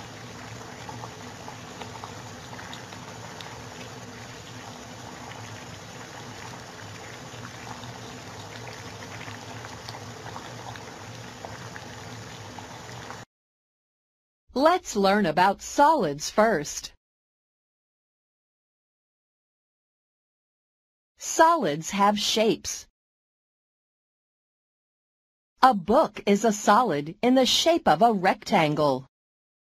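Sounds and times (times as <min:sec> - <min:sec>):
pot of water boiling with dense bubbling and popping: 0:00.0 - 0:13.3
speech: 0:14.6 - 0:17.0, 0:21.5 - 0:22.9, 0:25.6 - 0:29.1.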